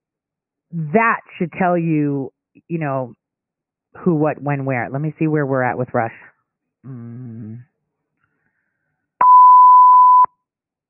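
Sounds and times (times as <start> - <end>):
speech: 0.7 - 3.2, 3.9 - 7.7
mid-pitched electronic beep: 9.2 - 10.3.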